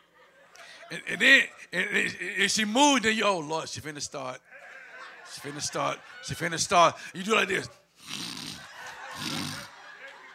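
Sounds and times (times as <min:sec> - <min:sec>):
laughter: 0:00.0 - 0:02.5, 0:04.4 - 0:07.7, 0:08.5 - 0:10.3
speech: 0:00.9 - 0:04.6, 0:05.3 - 0:08.2
voice imitating snoring: 0:08.0 - 0:09.7.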